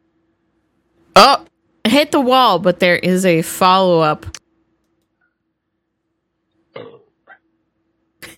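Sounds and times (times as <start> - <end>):
speech: 1.2 - 4.4
throaty burp: 6.7 - 7.4.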